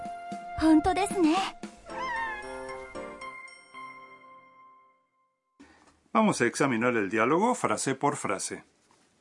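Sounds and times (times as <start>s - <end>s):
speech: 0.6s - 1.6s, 6.2s - 8.8s
cat meowing in a cat café: 1.9s - 3.0s.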